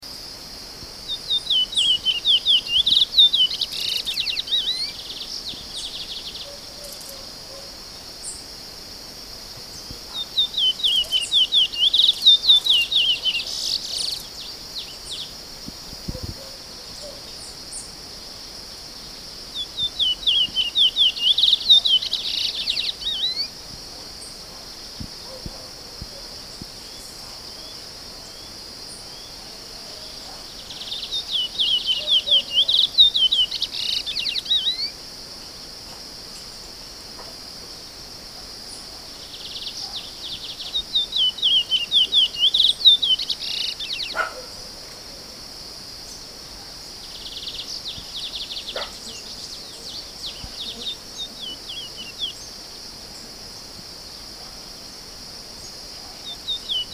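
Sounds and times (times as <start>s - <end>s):
curio bird singing: 1.0s - 9.0s, 9.6s - 18.0s, 19.0s - 23.6s, 26.8s - 35.0s, 38.7s - 44.6s, 46.1s - 52.6s, 55.6s - 56.9s.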